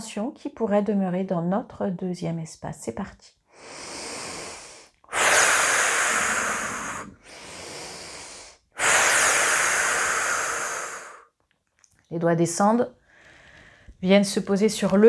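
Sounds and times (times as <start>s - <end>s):
speech: 0.0s - 3.9s, 12.1s - 13.0s, 14.0s - 15.0s
slow breathy exhalations during a relaxation exercise: 3.5s - 11.3s, 13.0s - 14.0s.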